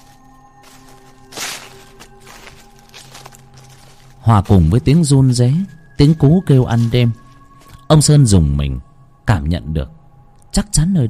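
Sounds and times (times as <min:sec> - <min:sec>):
footsteps rustling through a pile of dry leaves in a dense overgrown forest: 0:00.0 - 0:08.0
speech: 0:04.2 - 0:07.2, 0:07.9 - 0:10.0, 0:10.6 - 0:11.0.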